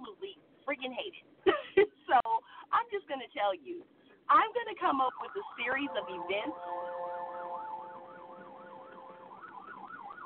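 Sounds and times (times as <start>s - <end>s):
faint traffic hum: 0.0s - 10.2s
speech: 0.8s - 1.3s, 3.4s - 7.2s
ambulance siren wailing in a fast rise-and-fall: 5.0s - 10.2s.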